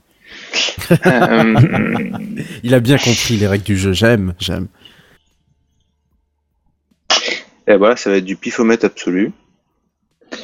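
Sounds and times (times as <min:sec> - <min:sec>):
laughter: 0:00.8 - 0:03.4
speech: 0:00.9 - 0:05.0, 0:07.7 - 0:09.4
loud sneeze: 0:07.1 - 0:07.5.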